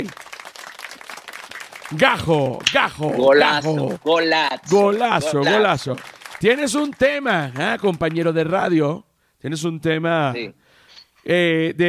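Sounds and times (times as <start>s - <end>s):
speech: 0.0s - 0.3s, 1.9s - 10.6s, 11.2s - 11.8s
applause from a small group: 0.0s - 8.6s.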